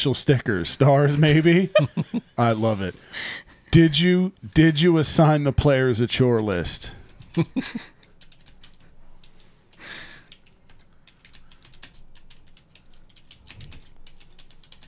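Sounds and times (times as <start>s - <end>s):
speech: 0.0s - 7.9s
laughter: 1.1s - 2.6s, 7.3s - 8.0s
rapid typing on a computer keyboard: 7.1s - 14.8s.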